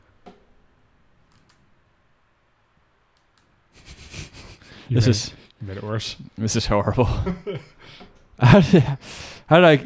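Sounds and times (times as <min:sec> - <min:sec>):
computer mouse clicking: 0:01.3 - 0:01.6, 0:03.1 - 0:03.5
speech: 0:04.9 - 0:09.8.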